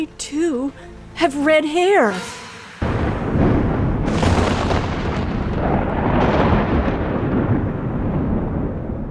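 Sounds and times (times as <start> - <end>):
speech: 0.0 - 2.4
thunder rumbling from an approaching storm: 2.6 - 9.0.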